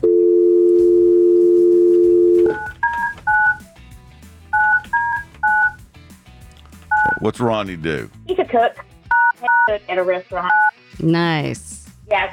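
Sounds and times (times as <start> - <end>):
telephone dial tone: 0.0 - 3.6
telephone touch-tone beeps placing a phone call: 0.0 - 3.6, 4.6 - 5.8, 6.9 - 7.2, 9.1 - 9.7
speech: 7.2 - 8.9, 9.7 - 12.3.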